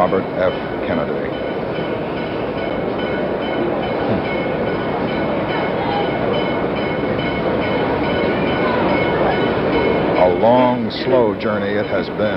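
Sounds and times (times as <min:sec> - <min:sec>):
speech: 0:00.0 - 0:01.9, 0:10.4 - 0:12.3
bell ringing at train station: 0:00.0 - 0:12.3
train rolling slowly into a station with heavy rumble: 0:00.0 - 0:12.3.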